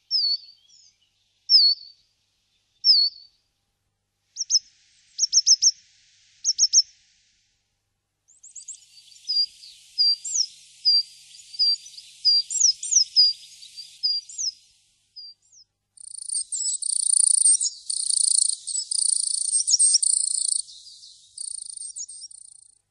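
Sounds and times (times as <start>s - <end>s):
coal tit call: 2.8s - 3.2s, 4.4s - 5.8s, 6.4s - 6.9s, 8.3s - 22.8s.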